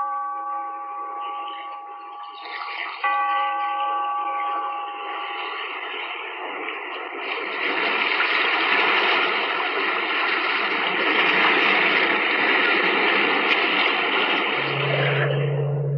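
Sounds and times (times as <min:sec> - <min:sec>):
low sustained tone: 0:00.0 - 0:07.2, 0:14.4 - 0:15.9
sea waves: 0:00.0 - 0:15.9.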